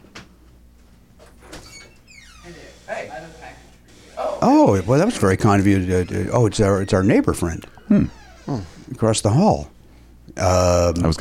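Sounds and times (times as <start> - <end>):
door hinge creaking: 1.4 - 8.9
speech: 2.5 - 11.1.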